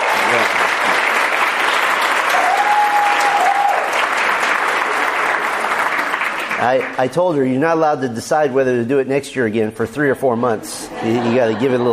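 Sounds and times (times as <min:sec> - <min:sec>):
crowd applauding: 0:00.0 - 0:07.3
speech: 0:06.6 - 0:11.9
laughter: 0:10.6 - 0:11.9.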